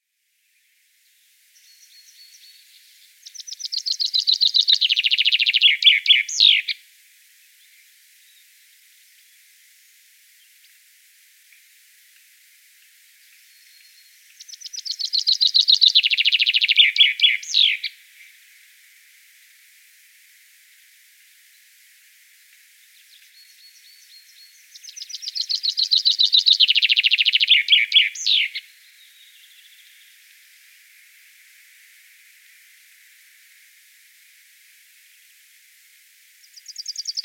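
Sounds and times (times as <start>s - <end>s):
chaffinch singing in Wiesloch: 3.3s - 6.8s, 14.4s - 17.9s, 24.0s - 28.6s.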